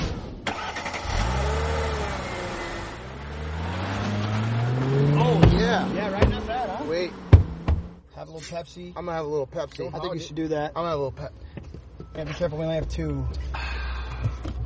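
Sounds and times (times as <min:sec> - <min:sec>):
car engine revving: 0:00.5 - 0:08.0
sharp knocks: 0:05.3 - 0:06.5, 0:07.2 - 0:08.0
speech: 0:08.4 - 0:11.4, 0:12.2 - 0:13.6.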